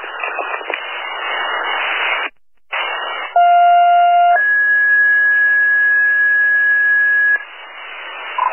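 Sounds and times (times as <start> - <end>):
radio static hiss: 0.0 - 8.5
fire alarm dispatch tones over a radio channel: 3.4 - 7.4.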